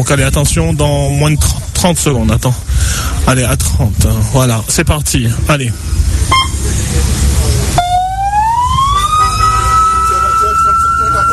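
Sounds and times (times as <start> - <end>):
speech: 0.0 - 7.2
engine rumbling: 0.0 - 11.3
siren signalling observers' vehicle departure: 7.8 - 11.3.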